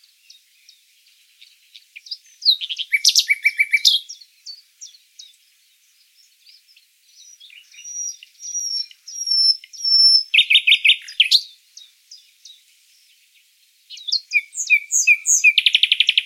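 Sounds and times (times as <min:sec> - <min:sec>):
common nightingale Luscinia megarhynchos whistles, chuckles and trills: 0:00.0 - 0:16.2.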